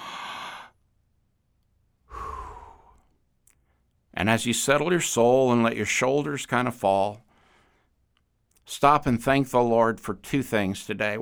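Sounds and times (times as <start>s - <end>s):
person taking slow deep breaths: 0.0s - 0.8s, 2.1s - 3.1s
speech: 4.2s - 7.3s, 8.7s - 11.2s.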